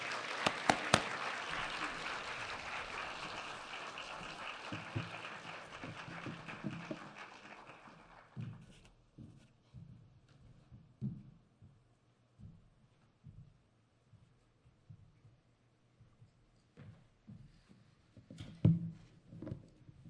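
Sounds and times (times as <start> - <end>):
audience applause welcoming a speaker: 0.0 - 8.7.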